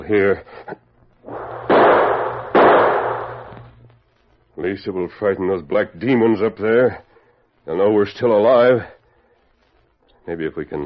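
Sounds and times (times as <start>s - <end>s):
speech: 0.1s - 0.8s, 4.6s - 7.1s, 7.7s - 9.0s, 10.3s - 10.8s
gunshots: 1.3s - 3.7s.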